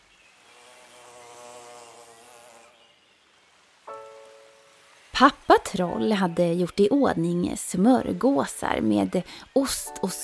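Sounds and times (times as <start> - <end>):
insect buzzing on a sunny summer sand beach by a lake: 0.0 - 10.2
outdoor hiss on a sunny summer sand beach by a lake: 0.0 - 10.2
speech: 5.2 - 10.2.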